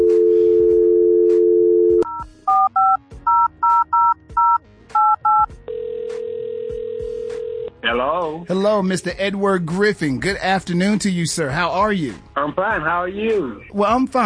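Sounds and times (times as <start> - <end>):
telephone dial tone: 0.0 - 7.7
speech: 8.3 - 14.2.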